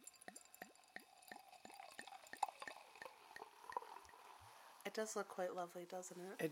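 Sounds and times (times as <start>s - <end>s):
Prosecco glugging into a glass: 0.0s - 4.5s
soft fizzy hiss of Prosecco: 0.0s - 6.5s
speech: 4.9s - 6.5s.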